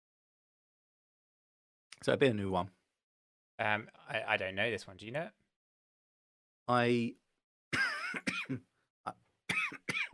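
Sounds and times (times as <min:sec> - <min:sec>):
speech: 0:02.0 - 0:02.8, 0:03.6 - 0:05.4, 0:06.7 - 0:09.2
loud harsh coughing fit: 0:07.7 - 0:08.7, 0:09.5 - 0:10.1.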